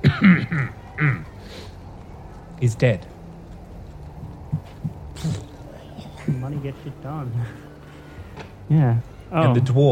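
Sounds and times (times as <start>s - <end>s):
man coughing: 0.0s - 0.7s
speech: 2.6s - 3.1s, 6.5s - 7.7s, 8.7s - 9.9s
laughter: 4.7s - 7.7s.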